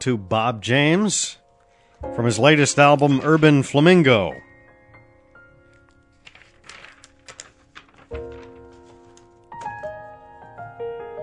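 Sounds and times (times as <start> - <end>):
speech: 0.0 - 1.4, 2.0 - 4.5
paper rustling: 2.4 - 4.5, 5.5 - 10.2.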